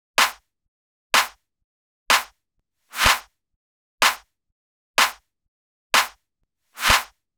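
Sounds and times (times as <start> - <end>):
slap house EDM drum clap: 0.2 - 0.4, 1.2 - 1.4, 2.1 - 2.3, 3.0 - 3.2, 4.0 - 4.2, 5.0 - 5.2, 6.0 - 6.2, 6.8 - 7.1.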